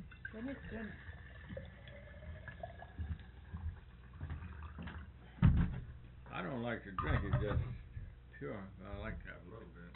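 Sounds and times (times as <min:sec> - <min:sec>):
drinking water pouring into a glass in a steady stream: 0:00.1 - 0:05.2
speech: 0:00.5 - 0:01.1, 0:06.8 - 0:07.8, 0:08.4 - 0:09.8.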